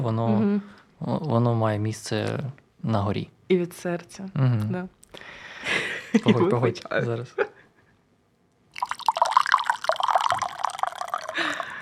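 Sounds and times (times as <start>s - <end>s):
speech: 0.0s - 7.5s
green tea pouring into a cup with bubbling gurgle: 8.7s - 11.7s.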